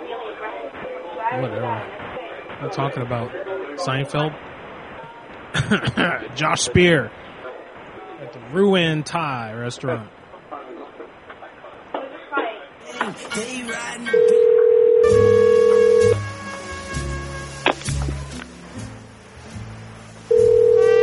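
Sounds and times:
murmur of voices: 0.0 - 8.7, 9.4 - 14.4
speech: 1.3 - 2.0, 2.6 - 4.5, 5.5 - 7.2, 8.2 - 10.2, 13.2 - 14.5
telephone ringback tone on a call to a Thai restaurant: 14.1 - 16.2, 20.3 - 21.0.

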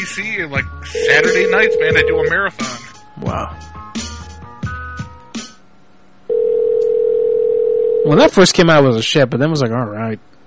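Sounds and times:
speech: 0.0 - 3.7, 8.0 - 10.4
loud steady mid-pitched telephone tone before a number-not-in-service recording: 1.0 - 2.3, 6.3 - 8.1
telephone line tonal blips and clicks: 6.3 - 8.0.

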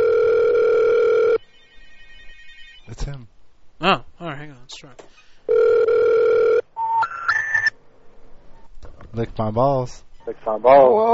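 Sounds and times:
telephone ringing with a steady electronic tone: 0.0 - 2.9, 5.5 - 7.7
speech: 9.2 - 11.1.

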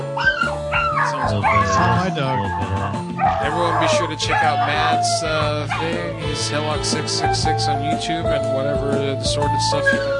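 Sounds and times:
dog whimpering and yipping: 0.1 - 5.1
speech: 1.2 - 10.1.

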